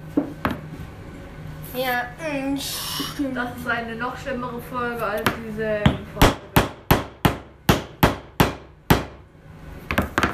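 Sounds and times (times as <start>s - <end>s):
speech: 1.7s - 6.4s
hammer striking a chisel: 5.9s - 9.2s.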